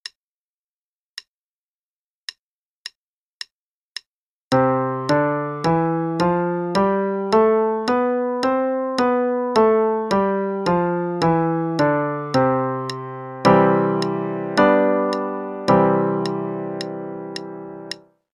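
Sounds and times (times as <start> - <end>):
C major scale and I-V-I chord progression: 4.5 - 18.0.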